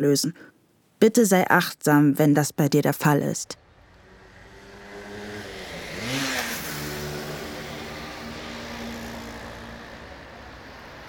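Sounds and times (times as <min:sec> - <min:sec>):
speech: 0:00.0 - 0:03.6
evening rush-hour traffic rumble at a busy roundabout in Münster, Germany: 0:03.6 - 0:11.0
vehicle revving loudly past: 0:03.6 - 0:11.0.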